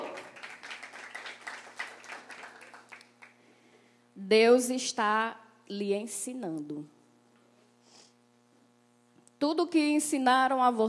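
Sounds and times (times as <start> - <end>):
audience applauding: 0.0 - 3.4
faint electrical hum: 0.0 - 10.8
speech: 4.2 - 7.0, 9.4 - 10.8.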